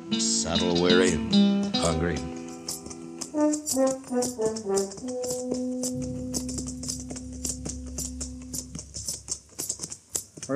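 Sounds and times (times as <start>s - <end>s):
short melodic music phrase settling into a held tone: 0.0s - 9.0s
speech: 0.1s - 2.4s, 3.4s - 6.4s
horses' hooves clip-clopping along a street: 2.3s - 10.5s.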